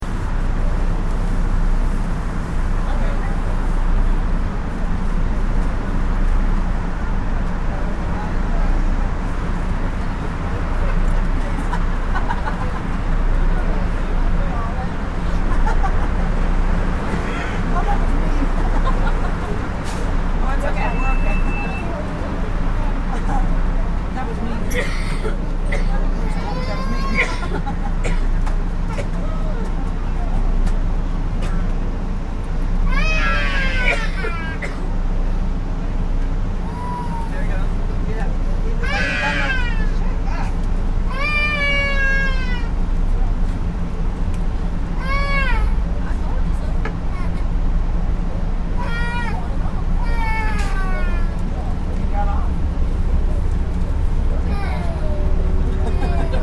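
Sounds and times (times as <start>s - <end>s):
electric train interior rumble: 0.0s - 56.4s
murmur of voices inside an electric train: 2.1s - 56.4s
lady laughing inside an electric train: 11.5s - 12.9s, 17.8s - 19.6s, 27.1s - 28.0s, 55.7s - 56.4s.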